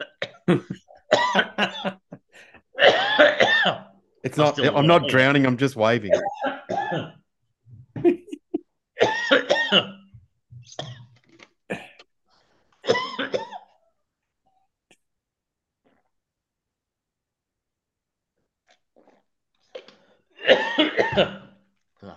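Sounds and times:
person coughing: 0:00.0 - 0:02.0, 0:02.8 - 0:05.2, 0:06.1 - 0:07.2, 0:09.0 - 0:11.1, 0:11.7 - 0:12.0, 0:12.8 - 0:13.8, 0:20.4 - 0:21.6
speech: 0:00.5 - 0:02.0, 0:04.3 - 0:06.4.

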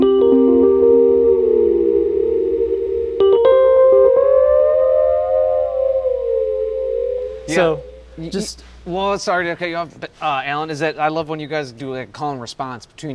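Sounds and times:
keyboard notes through a delay pedal with pitch bend effect: 0:00.0 - 0:08.5
speech: 0:07.5 - 0:13.1.

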